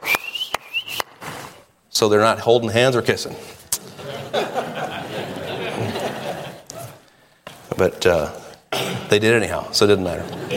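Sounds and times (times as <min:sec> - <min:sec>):
person whistling a thin rising tone: 0:00.0 - 0:01.2
sharp hand claps: 0:00.0 - 0:01.2
speech: 0:02.0 - 0:03.6, 0:07.8 - 0:08.4, 0:09.1 - 0:10.5
laughter: 0:03.8 - 0:07.0, 0:10.1 - 0:10.5.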